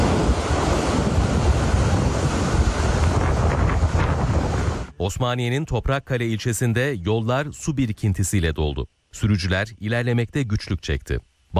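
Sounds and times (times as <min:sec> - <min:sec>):
heavy rain during a storm: 0:00.0 - 0:04.9
speech: 0:05.1 - 0:11.5.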